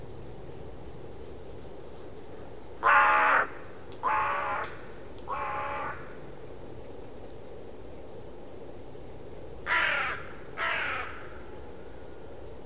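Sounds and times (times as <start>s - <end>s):
steady background noise: 0.0s - 12.6s
bird giving harsh crow-like caws: 2.8s - 6.2s, 9.6s - 11.6s.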